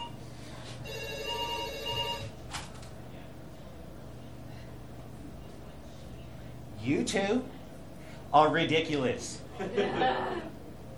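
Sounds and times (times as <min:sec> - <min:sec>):
low hum: 0:00.0 - 0:10.9
telephone ringing with an electronic trill: 0:00.8 - 0:02.4
speech: 0:06.9 - 0:07.6, 0:08.3 - 0:10.5
laughter: 0:09.5 - 0:10.7.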